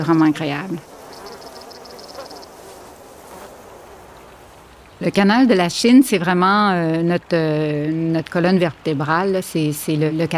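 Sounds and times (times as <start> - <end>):
speech: 0.0 - 0.9, 5.0 - 10.3
bees and other pollinators buzzing around an insect hotel: 0.0 - 4.6
highway traffic: 0.0 - 5.8.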